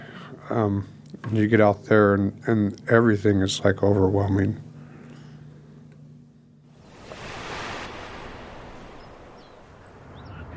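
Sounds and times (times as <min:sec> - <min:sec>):
speech: 0:00.5 - 0:04.7
small waves lapping at the shore beside a prison: 0:06.7 - 0:10.5.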